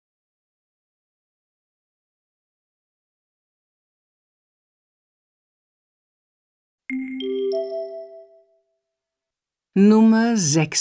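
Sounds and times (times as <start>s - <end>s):
speech: 6.9s - 7.8s, 9.8s - 10.8s
mobile phone ringing with a short electronic tune of rising chime notes: 6.9s - 8.6s.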